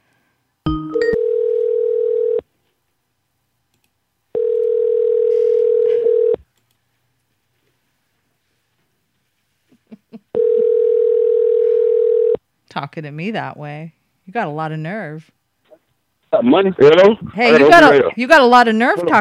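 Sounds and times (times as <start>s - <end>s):
telephone ringback tone while placing a call: 0.7s - 2.4s, 4.4s - 6.4s, 10.4s - 12.4s
speech: 12.8s - 15.4s, 16.3s - 19.1s.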